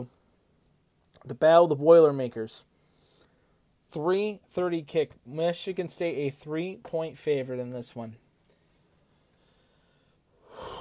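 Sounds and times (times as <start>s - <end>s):
speech: 1.2s - 2.7s, 3.9s - 8.2s
deep breath in: 9.0s - 10.7s.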